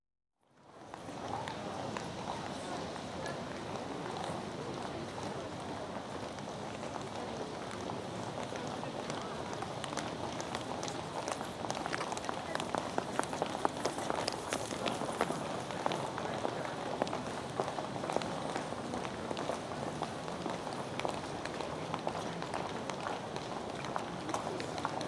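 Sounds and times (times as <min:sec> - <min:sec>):
exterior atmosphere ambience with people: 0:00.6 - 0:25.0
rush hour footsteps outdoors: 0:10.4 - 0:16.2.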